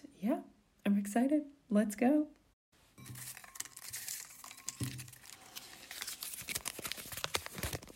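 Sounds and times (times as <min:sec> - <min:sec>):
speech: 0:01.1 - 0:02.4
paper slips crinkling and rustling while being rummaged through: 0:03.0 - 0:07.9.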